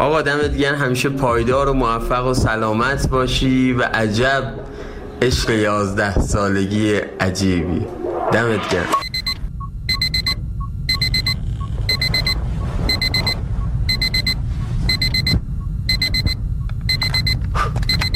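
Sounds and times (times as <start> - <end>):
speech: 0.0 - 9.0
low hum: 0.0 - 18.1
electronic alarm clock beeping: 9.0 - 18.1.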